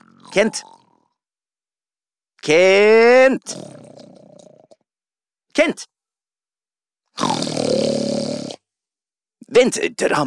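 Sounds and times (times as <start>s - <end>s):
loud rasping snore: 0.0s - 1.0s, 3.4s - 4.8s, 7.2s - 8.7s
speech: 0.4s - 0.8s, 2.4s - 3.8s, 5.6s - 5.9s, 9.5s - 10.2s.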